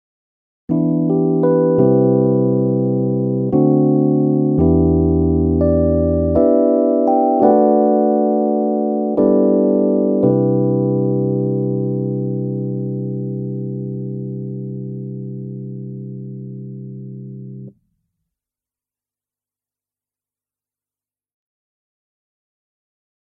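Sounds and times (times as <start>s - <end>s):
Korg SDD-3000 electric piano without effects: 0.7s - 17.9s.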